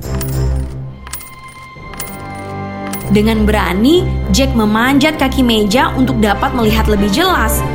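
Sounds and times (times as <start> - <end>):
gold coins clinking as they are counted: 0.0 - 3.3
speech: 3.1 - 7.7.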